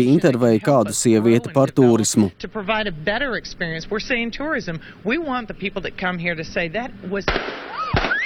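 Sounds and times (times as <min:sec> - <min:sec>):
speech: 0:00.0 - 0:07.8
loud gunshots at a shopping centre near Moneta Virginia: 0:07.3 - 0:08.2.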